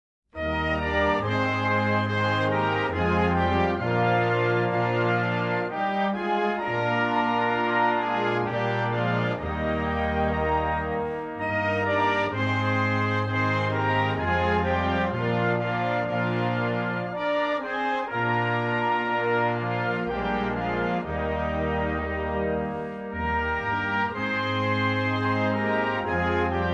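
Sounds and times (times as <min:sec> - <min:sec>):
national anthem music: 0:00.4 - 0:26.7.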